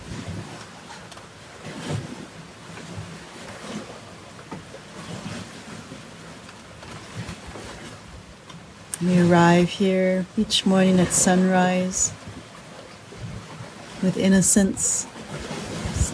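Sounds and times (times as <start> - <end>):
water waves lapping: 0.0 - 16.1
speech: 9.0 - 12.2, 14.0 - 15.1.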